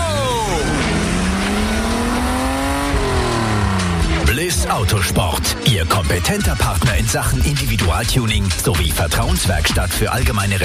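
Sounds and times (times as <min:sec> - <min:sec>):
race car engine accelerating out of the pit lane after a tyre change: 0:00.0 - 0:05.6
speech: 0:04.7 - 0:10.6.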